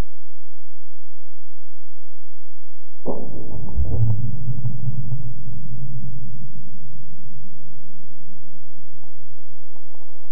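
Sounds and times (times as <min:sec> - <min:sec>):
earthquake rumble: 0:03.1 - 0:07.5.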